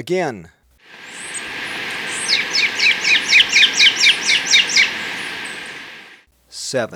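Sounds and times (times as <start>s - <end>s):
great thrush calling in Ecuador: 0.8s - 6.2s
steady background hiss: 0.8s - 6.9s.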